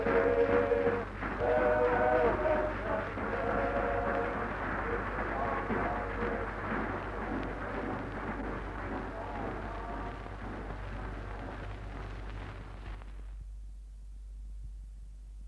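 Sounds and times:
murmur of voices: 0.0s - 10.8s
train pulling out of a station with rumble and hiss: 0.0s - 13.2s.

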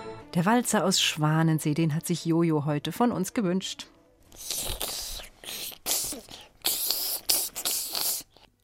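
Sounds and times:
speech: 0.3s - 4.7s
voice imitating a snake's hiss: 4.3s - 8.5s.

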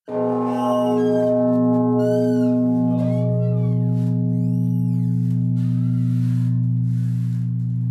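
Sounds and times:
large church bell struck, deep booming tone: 0.0s - 7.8s.

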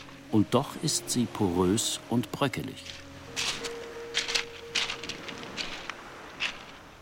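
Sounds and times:
speech: 0.3s - 3.6s
footsteps on loose beach gravel by the surf: 2.8s - 6.9s.

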